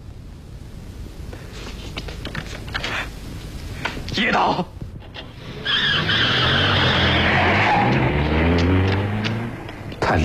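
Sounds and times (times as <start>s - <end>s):
speech: 4.2s - 4.8s
car tires skidding and screeching as it brakes hard: 5.4s - 9.9s.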